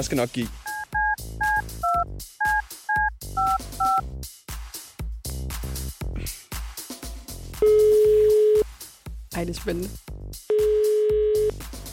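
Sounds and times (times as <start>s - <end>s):
speech: 0.0s - 0.6s, 9.4s - 10.1s
dual-tone telephone keypad beeps: 0.7s - 4.0s, 7.6s - 8.6s, 10.5s - 11.5s
steady telephone ringing tone on the line: 7.6s - 8.6s, 10.5s - 11.5s.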